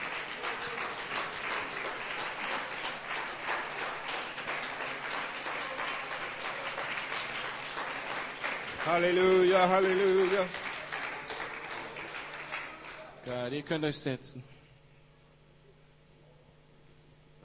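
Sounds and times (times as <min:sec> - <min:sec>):
congregation clapping hands in praise during a church service: 0:00.0 - 0:13.9
speech: 0:08.9 - 0:10.6, 0:13.3 - 0:14.5.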